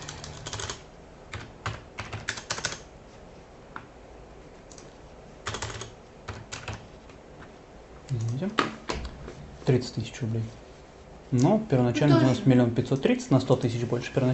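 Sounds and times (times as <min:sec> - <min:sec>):
typing on a computer keyboard: 0:00.0 - 0:02.9, 0:04.7 - 0:06.9
speech: 0:09.7 - 0:10.6, 0:11.3 - 0:14.3.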